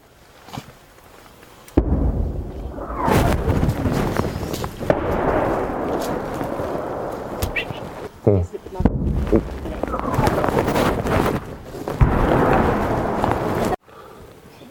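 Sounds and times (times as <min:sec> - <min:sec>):
Russian artillery shelling blast: 0:01.8 - 0:08.2, 0:08.8 - 0:13.8
low rumble with scattered booms of Russian artillery shelling: 0:01.8 - 0:13.8.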